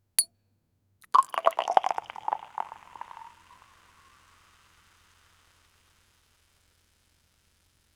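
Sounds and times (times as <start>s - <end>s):
champagne bottle popping: 1.1s - 3.3s.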